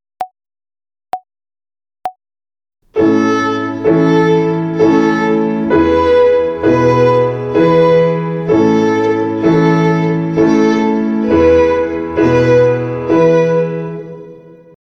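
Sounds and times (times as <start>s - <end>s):
violin finger exercise on the A string in ternary time: 2.9s - 14.8s.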